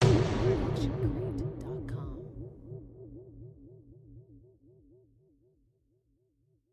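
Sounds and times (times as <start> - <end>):
designed sci-fi hit: 0.0 - 3.7.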